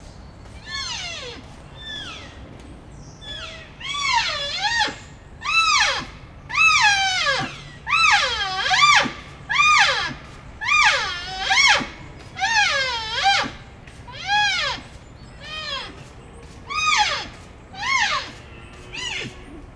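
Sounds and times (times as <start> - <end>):
Cervus elaphus nannodes female calling, dissonant calls of Lesser wapiti hinds: 3.2 - 14.8, 16.7 - 18.3, 19.0 - 19.6.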